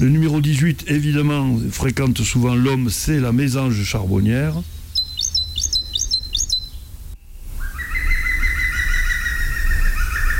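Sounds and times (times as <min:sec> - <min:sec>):
speech: 0:00.0 - 0:04.8
green woodpecker calling in the countryside: 0:00.0 - 0:10.3.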